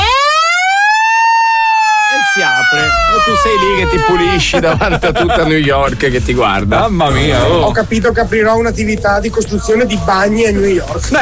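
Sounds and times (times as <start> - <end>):
siren sounding after a countdown reaches zero: 0.0 - 4.5
speech: 2.7 - 11.1
laughter: 3.0 - 7.8.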